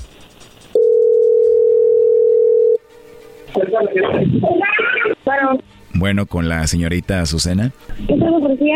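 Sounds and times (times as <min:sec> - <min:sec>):
telephone dial tone while a call is dialled: 0:00.8 - 0:02.8
speech: 0:03.8 - 0:08.7.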